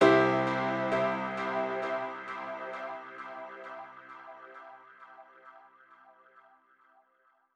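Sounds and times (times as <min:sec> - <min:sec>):
short piano piece in C major at 134 BPM: 0:00.0 - 0:03.4.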